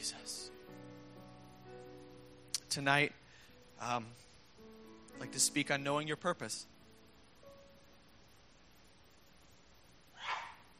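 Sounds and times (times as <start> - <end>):
quiet hiss: 0.0 - 10.7
speech: 2.8 - 3.2, 3.8 - 4.2, 5.2 - 6.7
person sneezing: 10.2 - 10.6.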